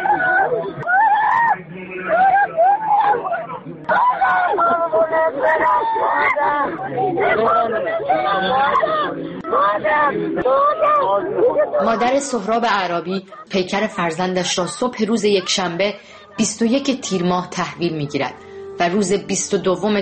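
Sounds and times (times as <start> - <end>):
laughter: 0.0 - 17.4
mother screaming and wailing: 0.0 - 17.5
crowd murmuring and calling out: 0.0 - 20.0
speech: 10.1 - 20.0.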